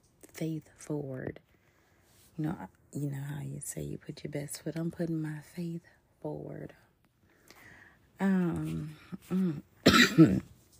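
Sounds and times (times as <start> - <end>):
speech: 0.4 - 1.5, 2.4 - 6.8, 8.2 - 10.5
person coughing harshly: 9.2 - 10.5
person clearing throat with groaning rasps: 9.3 - 10.5.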